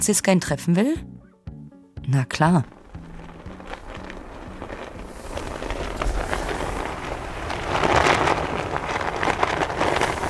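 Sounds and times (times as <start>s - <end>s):
speech: 0.0s - 1.2s, 2.1s - 2.8s
oversized Serbian flag flapping in strong wind on a rock: 2.6s - 10.2s.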